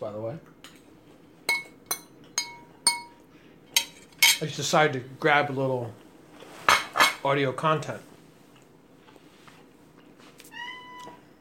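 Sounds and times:
speech: 0.0 - 0.8, 4.4 - 6.0, 7.2 - 8.1
male cat meowing: 10.5 - 11.3.

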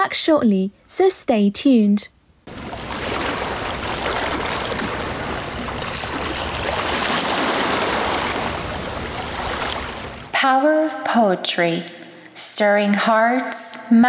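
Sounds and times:
speech: 0.0 - 2.6, 10.4 - 12.0, 12.6 - 14.0
sea waves splashing on the shore: 2.5 - 10.3.

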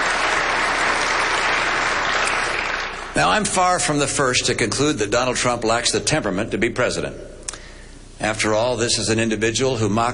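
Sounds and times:
large audience applauding during a speech: 0.0 - 3.2
speech: 3.2 - 7.3, 8.2 - 10.1.

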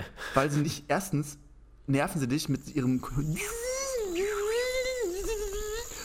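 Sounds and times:
speech: 0.4 - 3.6
voice imitating a mosquito's whine with a nasal buzz: 2.6 - 6.0.

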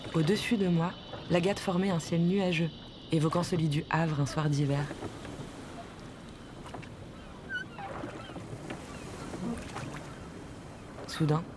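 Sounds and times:
waves washing against a boat on open water: 0.0 - 11.5
wind buffeting the microphone: 0.0 - 11.5
speech: 0.2 - 5.3, 11.2 - 11.5
faint creaks or chirps: 4.8 - 10.2.

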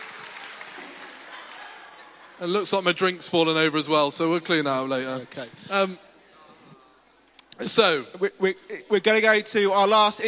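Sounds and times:
audience applause: 0.0 - 3.0
speech: 2.4 - 6.1, 7.6 - 10.2.

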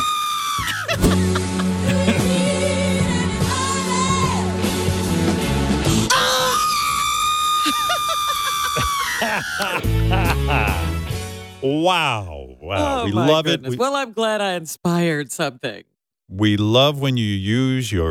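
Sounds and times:
woman screaming: 0.0 - 1.0, 6.1 - 9.6
laughter: 0.6 - 2.6, 7.6 - 11.1, 12.8 - 13.8
full-band pop song: 1.0 - 5.3, 12.7 - 13.8
speech: 11.6 - 18.0.

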